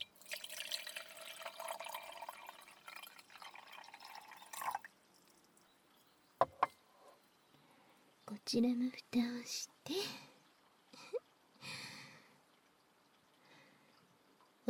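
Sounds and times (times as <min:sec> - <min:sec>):
hot water being poured into a container while cooking: 0:00.0 - 0:06.1
speech: 0:08.5 - 0:10.3.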